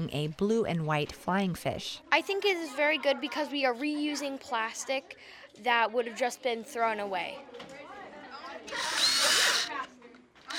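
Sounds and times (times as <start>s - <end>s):
speech: 0.0s - 7.8s, 8.7s - 9.0s
power drill boring holes into cut-out plastic pieces of a fish sculpture: 8.7s - 9.8s.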